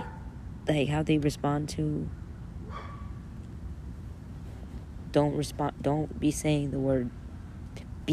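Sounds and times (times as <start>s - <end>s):
dog barking: 0.0s - 0.3s, 2.6s - 3.2s
speech: 0.7s - 2.2s, 5.2s - 7.2s.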